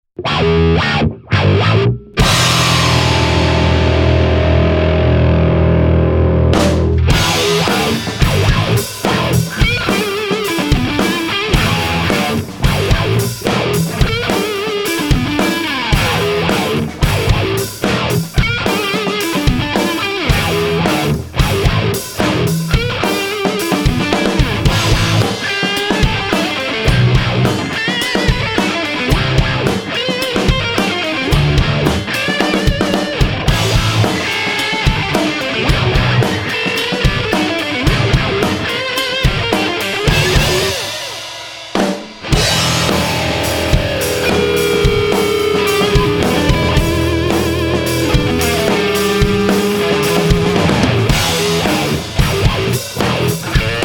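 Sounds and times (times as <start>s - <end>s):
bass through Boogie amplifier with wah: 0.2s - 41.2s, 42.1s - 53.8s.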